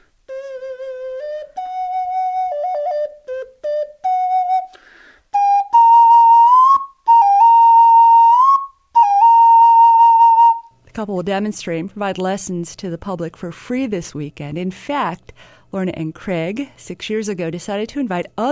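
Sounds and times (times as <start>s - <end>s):
small palm-sized face-shaped whistle playing a simple melody: 0.3s - 10.7s
speech: 11.0s - 18.4s.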